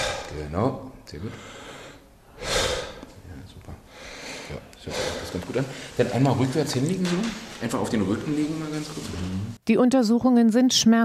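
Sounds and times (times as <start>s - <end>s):
deep breathing in and out through the open mouth during a medical check-up: 0.0s - 0.4s, 1.3s - 3.1s, 3.9s - 6.0s
speech: 0.4s - 1.6s, 4.5s - 11.0s.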